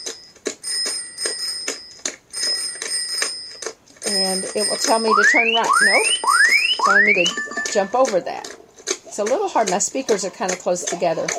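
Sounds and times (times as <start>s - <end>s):
bicycle bell ringing in an audio video game: 0.0s - 6.0s
speech: 4.1s - 8.5s, 9.1s - 11.3s.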